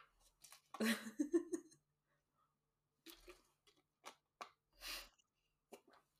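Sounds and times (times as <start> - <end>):
person sipping and swallowing water: 3.0 - 6.1.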